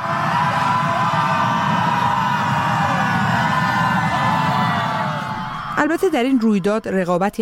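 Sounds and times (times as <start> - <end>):
large crowd screaming and yelling at the beach: 0.0 - 7.4
speech: 5.8 - 7.4.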